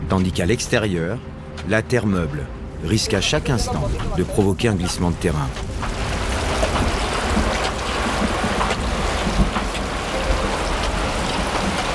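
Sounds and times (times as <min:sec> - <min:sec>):
speech: 0:00.1 - 0:06.0
steady rain falling on a tarp: 0:03.5 - 0:11.9.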